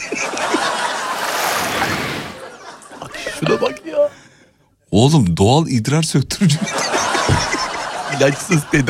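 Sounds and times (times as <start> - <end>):
laughter: 0.0 - 4.1, 6.4 - 8.8
ocean waves washing in a broad hissing surf: 0.8 - 2.6
speech: 3.5 - 4.2, 4.9 - 8.8.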